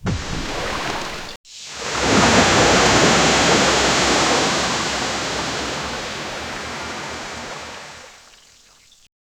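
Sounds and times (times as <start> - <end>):
huge surges of ocean water impacting: 0.0 - 8.8.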